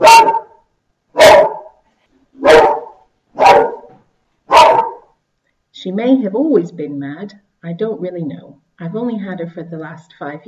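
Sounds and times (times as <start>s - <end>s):
dog barking: 0.0s - 1.8s, 2.4s - 5.1s
speech: 5.8s - 10.4s.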